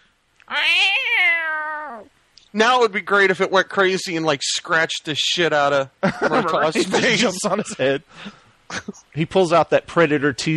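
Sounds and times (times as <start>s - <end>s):
speech: 0.5s - 1.1s, 2.0s - 10.5s
cat meowing: 0.5s - 2.1s
laughter: 6.0s - 9.0s.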